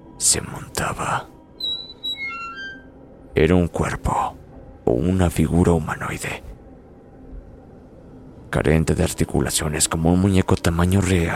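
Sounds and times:
speech: 0.2 - 1.4, 3.4 - 6.5, 8.5 - 11.3
unlubricated wheelchair wheels squeaking: 1.6 - 2.9.

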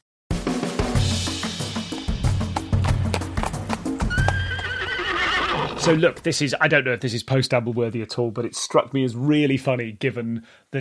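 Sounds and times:
horse hooves clip-clopping: 1.4 - 6.4
horse neighing: 2.8 - 6.2
speech: 5.8 - 10.7.

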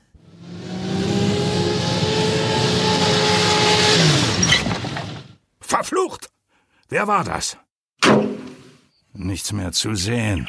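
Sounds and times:
Porsche sports car engine droning while slowing and turning: 0.0 - 5.2
Porsche sports car brakes squealing: 0.2 - 5.4
speech: 5.8 - 6.3, 6.9 - 8.2, 9.2 - 10.4.

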